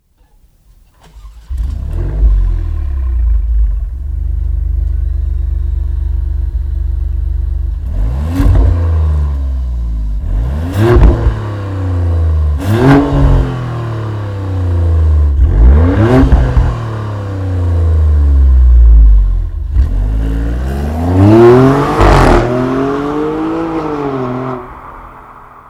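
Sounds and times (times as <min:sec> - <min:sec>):
Maserati Grecale V6 engine: 0:00.0 - 0:25.6.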